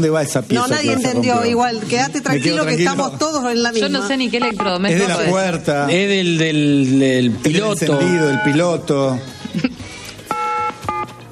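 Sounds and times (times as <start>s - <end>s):
speech: 0.0s - 9.7s
telephone keypad electronic dual-tone beeps: 4.2s - 5.2s, 7.9s - 8.8s, 10.3s - 11.2s.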